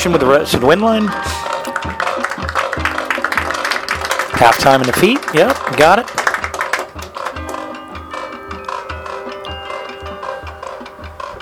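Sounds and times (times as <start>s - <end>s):
speech: 0.0s - 1.4s, 4.4s - 6.2s
clock ticking: 2.8s - 11.4s.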